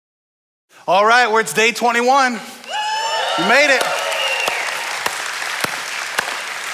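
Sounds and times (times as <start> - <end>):
speech: 0.7 - 2.6, 3.4 - 4.0
crowd applauding: 2.6 - 6.7.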